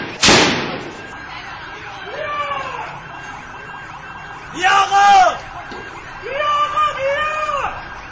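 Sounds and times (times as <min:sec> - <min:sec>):
sharp loud gunshot: 0:00.0 - 0:01.0
crowd of protesters clamoring in a street: 0:01.9 - 0:03.0, 0:03.6 - 0:08.1
people shouting and yelling: 0:02.1 - 0:03.0, 0:04.5 - 0:05.4, 0:06.2 - 0:07.8.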